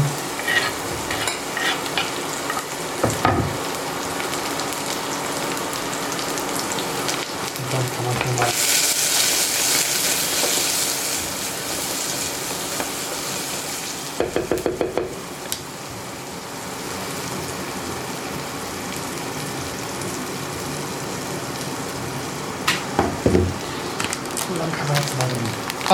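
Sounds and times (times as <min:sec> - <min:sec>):
onions and chopped spring onions sizzling in hot olive oil in a pot: 0:00.0 - 0:25.9
stirring scrapes and clatters in a pot: 0:00.4 - 0:02.2.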